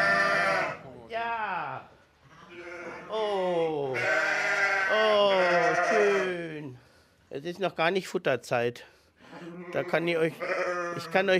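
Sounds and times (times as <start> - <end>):
sheep bleating inside a small stable beside monastery fields: 0.0 - 0.8, 2.4 - 3.2, 3.9 - 6.4, 9.4 - 11.3
speech: 7.5 - 8.9, 9.7 - 11.3.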